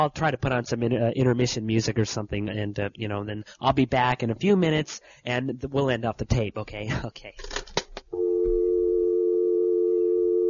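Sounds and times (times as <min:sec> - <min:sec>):
speech: 0:00.0 - 0:08.2
telephone dial tone: 0:08.2 - 0:10.4.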